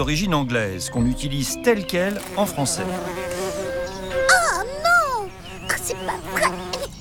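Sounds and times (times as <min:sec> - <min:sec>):
speech: 0:00.0 - 0:03.4
small wasp buzzing as it flies overhead: 0:02.0 - 0:06.9.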